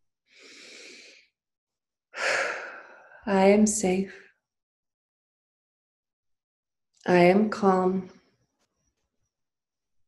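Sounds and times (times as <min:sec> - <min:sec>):
deep slow breath taken in and let go: 0:00.3 - 0:01.4, 0:02.2 - 0:03.3
speech: 0:03.2 - 0:04.2, 0:07.1 - 0:08.2.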